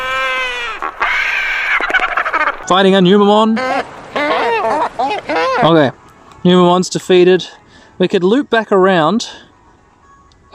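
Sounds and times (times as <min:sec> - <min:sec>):
albatross calls: 0:00.0 - 0:05.9
speech: 0:02.7 - 0:04.0, 0:05.0 - 0:09.4.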